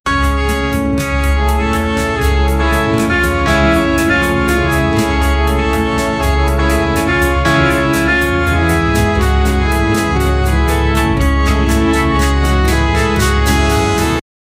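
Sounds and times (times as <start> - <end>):
light Japanese melody: 0.1 - 14.2.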